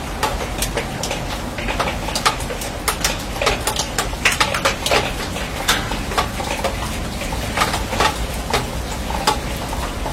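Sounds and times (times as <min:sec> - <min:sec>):
rain on a steel roof: 0:00.0 - 0:10.1.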